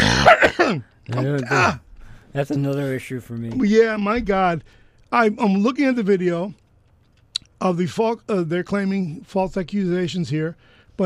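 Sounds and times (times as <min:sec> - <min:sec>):
gravelly throat clearing: 0:00.0 - 0:01.8
person coughing: 0:00.0 - 0:01.8
speech: 0:00.2 - 0:06.6, 0:07.6 - 0:11.0.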